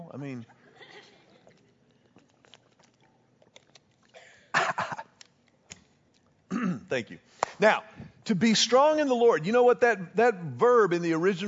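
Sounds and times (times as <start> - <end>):
speech: 0.1 - 0.6, 6.9 - 11.4
person coughing and clearing throat from a communion crumb stuck in the throat: 4.2 - 5.2, 6.5 - 6.9.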